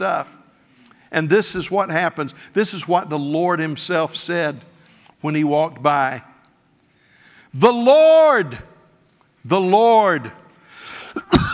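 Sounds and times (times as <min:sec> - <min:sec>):
speech: 0:00.0 - 0:00.4, 0:01.1 - 0:06.3, 0:07.5 - 0:08.7, 0:09.4 - 0:10.4
faint hiss: 0:00.0 - 0:11.5
person coughing: 0:11.1 - 0:11.5.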